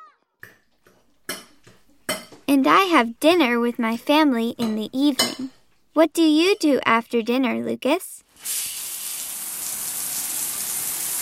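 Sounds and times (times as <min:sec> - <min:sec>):
speech: 0:02.5 - 0:08.7
running water from a shower: 0:08.3 - 0:11.2.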